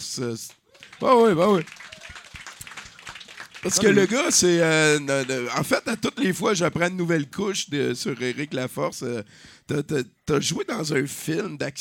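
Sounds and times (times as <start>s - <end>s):
speech: 0.0s - 1.9s, 3.6s - 11.7s
applause from a small group: 0.4s - 5.8s.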